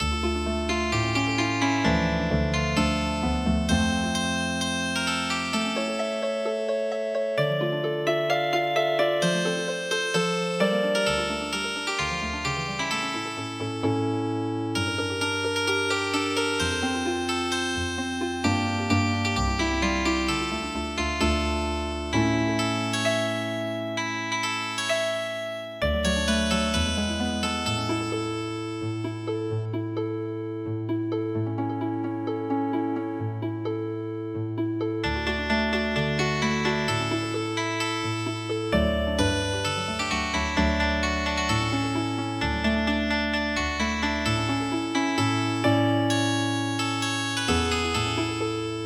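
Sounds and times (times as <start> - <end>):
traditional MIDI harp music: 0.0 - 48.8.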